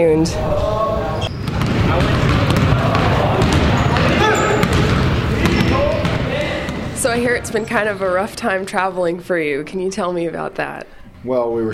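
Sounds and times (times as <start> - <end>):
speech: 0.0 - 0.7, 7.1 - 11.7
basketballs bouncing during boys' basketball practice in a high school gym: 1.2 - 8.6.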